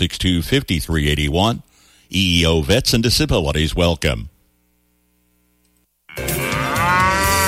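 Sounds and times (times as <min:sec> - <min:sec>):
speech: 0:00.0 - 0:04.3
cow mooing: 0:06.1 - 0:07.4.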